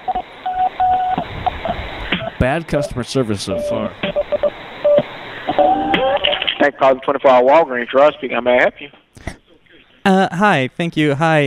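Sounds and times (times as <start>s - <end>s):
short telephone beeps down a phone line: 0.1s - 2.4s, 3.5s - 6.5s
speech: 2.4s - 4.2s, 6.6s - 9.0s, 10.0s - 11.4s.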